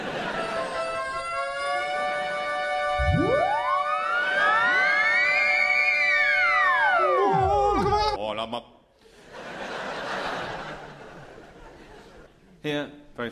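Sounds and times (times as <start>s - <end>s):
laughter: 0.0s - 1.2s, 9.1s - 12.6s
ambulance siren wailing with layered sweeping tones: 0.5s - 8.1s
speech: 12.6s - 13.3s.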